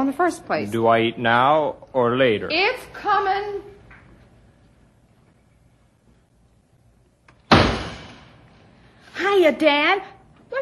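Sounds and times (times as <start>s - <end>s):
speech: 0.0s - 3.7s, 9.2s - 10.6s
door slamming: 7.4s - 8.4s.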